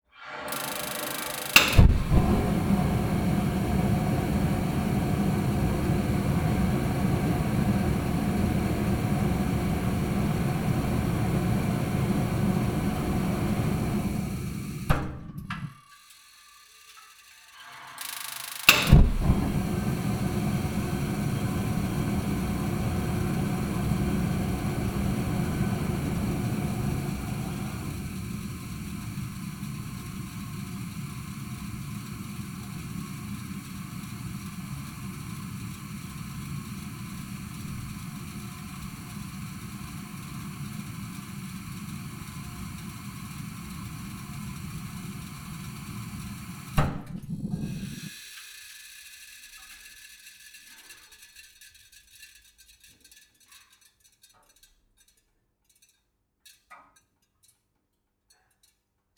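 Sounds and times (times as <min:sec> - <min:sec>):
water heater: 0:00.2 - 0:49.3.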